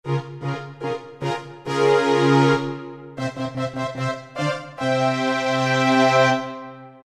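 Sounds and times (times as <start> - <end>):
horns on Roland PN-D50-01: 0.1 - 7.0
strings on Roland PN-D50-01: 0.1 - 7.0.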